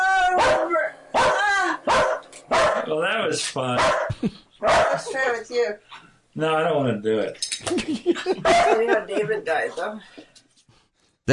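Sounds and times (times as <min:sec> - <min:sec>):
dog barking excitedly: 0:00.3 - 0:02.9, 0:03.8 - 0:05.1, 0:08.4 - 0:08.9
speech: 0:03.0 - 0:10.3
laughter: 0:04.1 - 0:05.2, 0:07.6 - 0:09.7.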